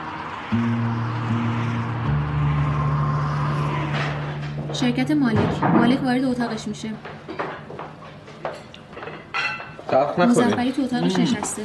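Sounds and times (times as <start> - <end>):
low engine drone from a car being driven: 0.0 - 6.9
speech: 0.5 - 1.4, 4.8 - 7.3, 9.9 - 11.6.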